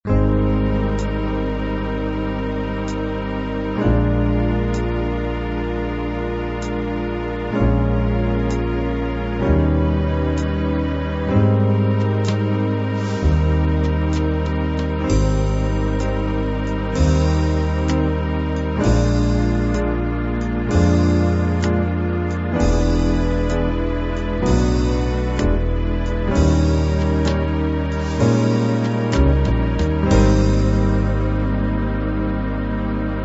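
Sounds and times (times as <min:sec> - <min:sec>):
jazz ballad: 0:00.1 - 0:33.2.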